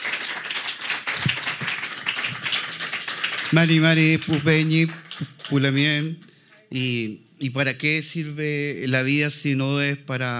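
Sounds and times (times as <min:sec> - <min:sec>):
crowd clapping: 0:00.0 - 0:06.4
speech: 0:03.5 - 0:10.3.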